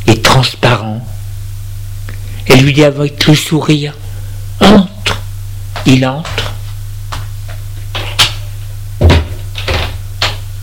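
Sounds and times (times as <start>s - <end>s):
low steady hum: 0.0s - 10.6s
speech: 0.4s - 1.1s, 2.4s - 4.0s, 5.8s - 6.4s
door swinging shut with a solid thump: 9.0s - 10.4s.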